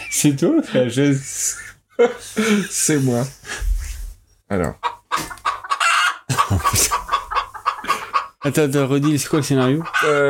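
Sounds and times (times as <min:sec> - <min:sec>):
speech: 0:00.2 - 0:03.7, 0:04.5 - 0:05.4, 0:06.5 - 0:07.0, 0:08.4 - 0:10.2
laughter: 0:01.7 - 0:03.3, 0:06.3 - 0:08.2
chickens clucking and squawking: 0:04.6 - 0:10.2.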